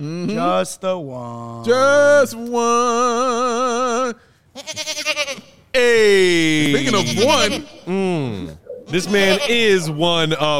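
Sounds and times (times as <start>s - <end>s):
speech: 0.0s - 4.9s, 5.8s - 10.5s
goat bleating in a sickly-sounding way: 4.5s - 5.6s, 6.6s - 7.9s, 8.9s - 9.9s.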